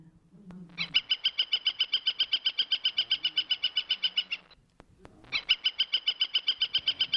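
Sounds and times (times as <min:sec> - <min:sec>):
woodpecker calling: 0:00.7 - 0:04.6, 0:05.3 - 0:07.1.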